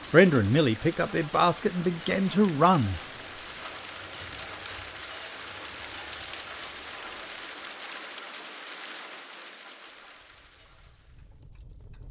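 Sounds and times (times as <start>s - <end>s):
steady heavy rain pouring: 0.0s - 11.3s
speech: 0.1s - 3.1s
faint low rumble: 10.7s - 12.0s.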